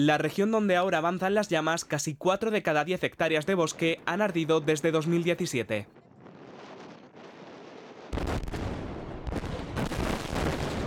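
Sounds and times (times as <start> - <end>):
speech: 0.0 - 6.0
heavy blast: 6.2 - 10.8.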